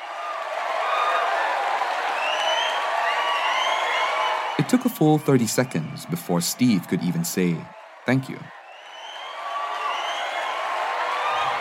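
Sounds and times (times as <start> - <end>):
large audience applause: 0.0 - 11.5
scattered cheers: 0.0 - 11.5
audience whistles: 2.2 - 6.4, 8.6 - 10.6
speech: 4.6 - 8.6.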